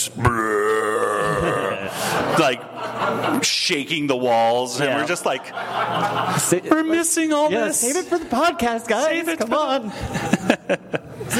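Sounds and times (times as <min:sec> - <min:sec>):
speech: 0:00.0 - 0:00.8, 0:01.9 - 0:11.3
long loud drawn-out belch: 0:00.3 - 0:01.9
laughter: 0:01.0 - 0:11.3.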